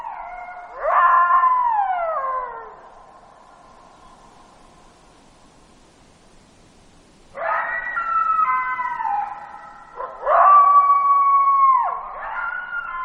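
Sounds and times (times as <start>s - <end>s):
coyote howling in Alaska: 0.0s - 3.1s, 7.4s - 13.0s.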